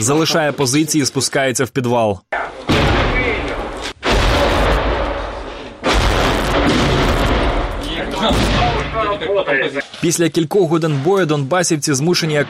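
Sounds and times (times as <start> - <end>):
speech: 0.0 - 2.4, 9.5 - 12.4
loud dense artillery shelling: 2.6 - 9.3
gunfire: 2.7 - 9.2.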